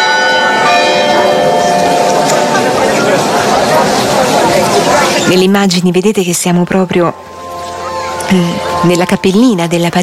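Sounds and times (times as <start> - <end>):
church bells ringing at a sanctuary: 0.0 - 5.4, 6.0 - 10.0
outdoor crowd chatter and voices: 0.0 - 10.0
speech: 5.3 - 7.4, 8.3 - 10.0.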